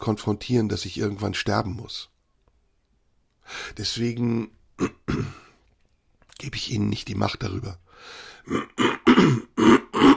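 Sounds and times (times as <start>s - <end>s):
speech: 0.0s - 2.1s, 3.5s - 5.4s, 6.4s - 9.7s
harsh coughs: 4.8s - 5.5s, 8.5s - 10.1s.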